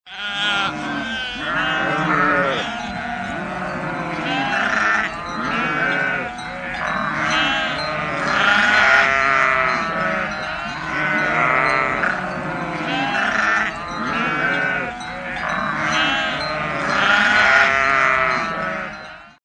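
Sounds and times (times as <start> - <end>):
flock of sheep: 0.1 - 19.4.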